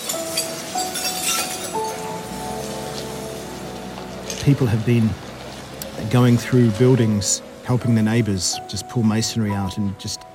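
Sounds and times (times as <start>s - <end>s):
broken glass from the streets being swept into piles: 0.0s - 4.7s
speech: 4.4s - 5.3s, 6.0s - 10.3s.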